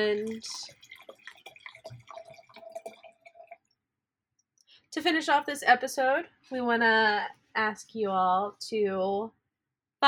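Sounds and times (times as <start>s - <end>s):
speech: 0.0s - 0.8s, 5.0s - 9.4s
wine pouring into a glass: 0.0s - 3.7s.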